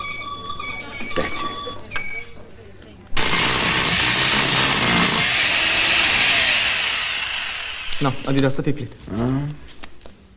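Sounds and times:
power drill boring into a wall: 3.2s - 8.4s
speech: 8.0s - 9.7s.

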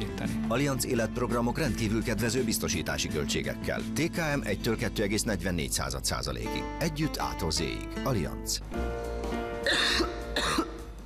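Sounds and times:
speech: 0.2s - 8.9s
person coughing: 9.6s - 10.9s.

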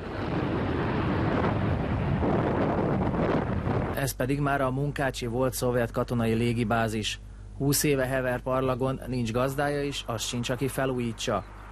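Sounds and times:
gusty wind buffeting the microphone: 0.0s - 4.2s
private jet turbines running up before takeoff at Uzhhorod airport Ukraine: 0.0s - 11.7s
speech: 4.0s - 11.6s.

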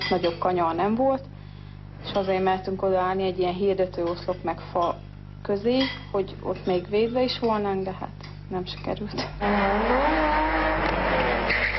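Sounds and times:
speech: 0.1s - 1.4s, 2.0s - 10.9s
BMW rally car engine roaring during a rally in Karcag: 9.4s - 11.7s
BMW rally car tires squealing while spinning: 9.4s - 11.7s.

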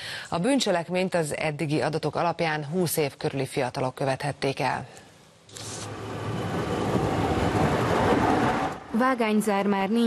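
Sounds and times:
speech: 0.3s - 5.7s, 9.0s - 10.0s
diesel motor train rolling past at a railway crossing: 5.9s - 9.6s.

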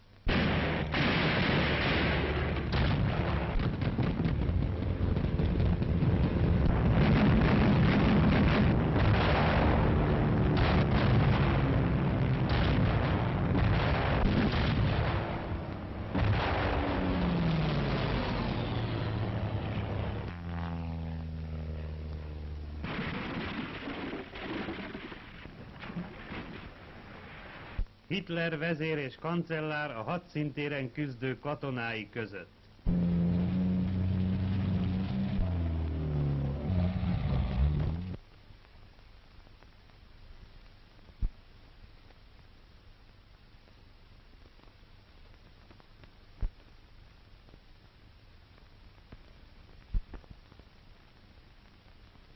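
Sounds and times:
heavy anti-aircraft artillery fire against aircraft: 0.3s - 27.0s
droning engine-like tone: 16.8s - 22.8s, 32.9s - 38.2s
speech: 28.1s - 32.6s.

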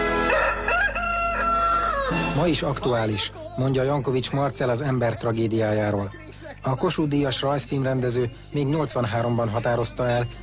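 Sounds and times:
rooster crowing: 0.2s - 2.5s
speech: 2.4s - 10.4s.

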